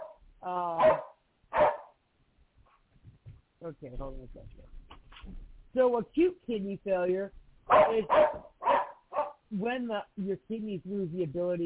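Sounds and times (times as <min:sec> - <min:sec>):
dog barking and yelping: 0:00.0 - 0:00.2, 0:00.8 - 0:02.0, 0:07.7 - 0:09.5
speech: 0:00.4 - 0:01.0, 0:03.7 - 0:08.5, 0:09.5 - 0:11.6.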